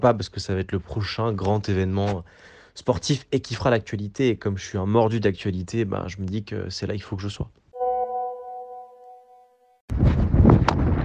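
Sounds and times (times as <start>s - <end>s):
speech: 0.0s - 7.6s
steady sustained tone: 7.8s - 9.8s
strong wind roaring into the microphone: 9.9s - 11.0s.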